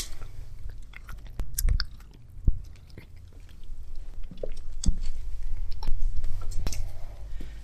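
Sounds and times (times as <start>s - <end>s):
animal chewing and smacking on its feed: 0.0s - 6.9s
low rumbling background: 0.0s - 7.6s.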